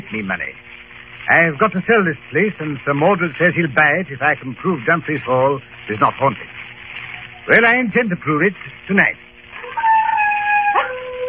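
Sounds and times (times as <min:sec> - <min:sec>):
speech: 0:00.1 - 0:00.7, 0:01.3 - 0:06.6, 0:07.4 - 0:09.3
wild dog howling on the moor: 0:09.6 - 0:11.2.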